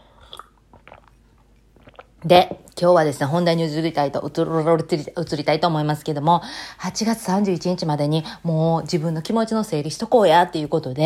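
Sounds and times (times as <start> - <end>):
person sipping a drink: 0.0 - 2.2
speech: 2.2 - 11.0.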